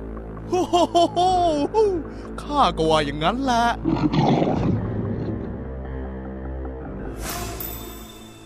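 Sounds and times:
laughter: 0.5 - 2.0
speech: 0.5 - 4.8
lion roaring while pouncing on a horse: 3.8 - 5.9.

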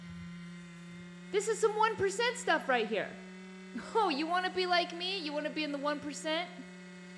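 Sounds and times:
computer fan whirring loudly: 0.0 - 7.1
speech: 1.3 - 6.7.

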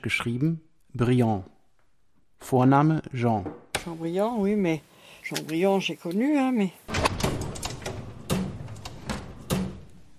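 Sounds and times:
speech: 0.0 - 1.5, 2.4 - 7.2
archive drawer holding black records in white sleeves sliding open: 6.9 - 10.0.

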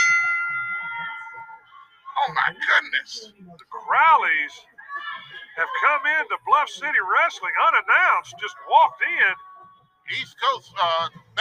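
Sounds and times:
wrestling ring bell strike: 0.0 - 1.8
faint low crowd murmur: 0.0 - 10.2
speech: 3.0 - 4.7, 5.6 - 9.5, 10.1 - 11.3.

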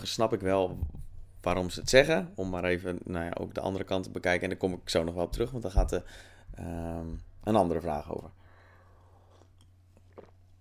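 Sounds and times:
speech: 0.0 - 8.4
steady low electrical hum: 0.0 - 10.5
person sipping and slurping coffee: 8.8 - 10.5
swallow of coffee: 9.3 - 10.5.

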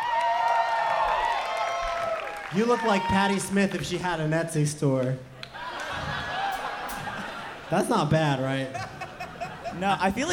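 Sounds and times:
live concert audience cheering and whooping: 0.0 - 4.0, 5.5 - 8.4
live concert audience clapping: 0.0 - 4.1
speech: 2.5 - 5.3, 7.7 - 9.0, 9.7 - 10.3
laughter: 5.4 - 10.3.

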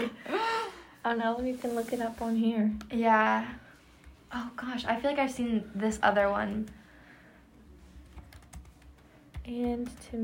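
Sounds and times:
speech: 1.0 - 3.6, 4.3 - 6.8, 9.5 - 10.2
typing on a keyboard with one hand: 8.0 - 10.2.

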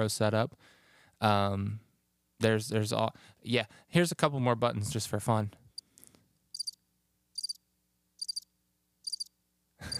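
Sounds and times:
speech: 0.0 - 1.8, 2.4 - 5.6
crickets chirping: 6.5 - 6.8, 7.4 - 7.6, 8.2 - 9.3.

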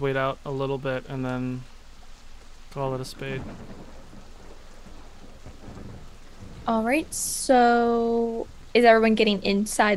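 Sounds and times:
speech: 0.0 - 1.7, 2.8 - 3.8, 6.6 - 9.9
rain falling during a thunderstorm: 0.0 - 9.9
low thunder rumbling: 2.7 - 9.9.

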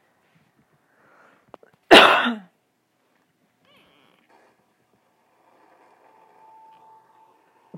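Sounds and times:
sharp cough: 1.9 - 2.5
faint soft tonal hum: 3.6 - 7.7.

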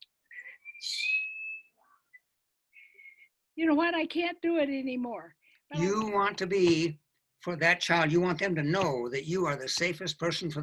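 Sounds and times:
person whistling one thin steady note: 0.3 - 3.3
speech: 3.6 - 10.6.

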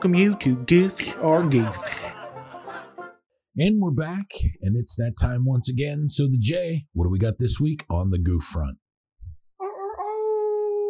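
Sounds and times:
speech: 0.0 - 2.0, 3.6 - 8.8
laughter: 1.1 - 3.1
person imitating a wolf howl: 9.6 - 10.8.

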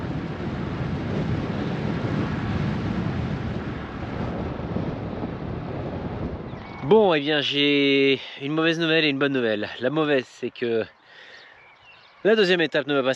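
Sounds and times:
strong wind roaring across the microphone: 0.0 - 9.8
speech: 6.9 - 11.0, 12.2 - 13.1.

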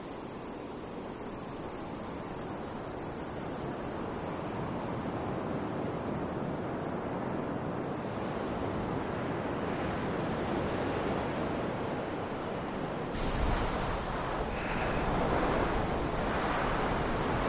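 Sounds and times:
strong wind on a sunny beach: 0.0 - 17.4
surf breaking on a sunny beach: 13.2 - 17.4.

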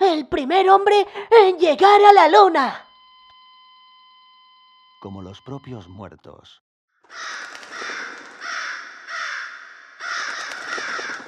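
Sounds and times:
speech: 0.2 - 2.8, 5.0 - 7.9
crows cawing in a cemetery: 7.1 - 11.2.

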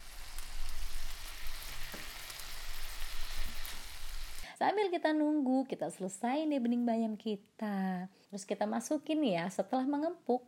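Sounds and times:
spiced braised chicken sizzling in a pan while being stirred: 0.0 - 4.4
speech: 4.6 - 10.4.

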